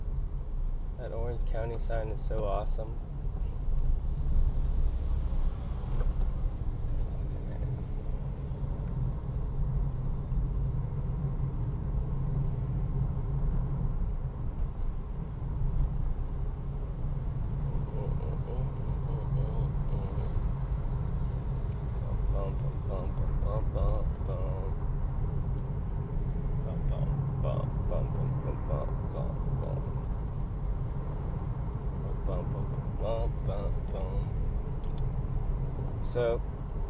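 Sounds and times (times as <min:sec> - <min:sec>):
car driving along a road in traffic: 0:00.0 - 0:36.8
speech: 0:01.0 - 0:03.2
faint voice murmuring: 0:17.8 - 0:20.4.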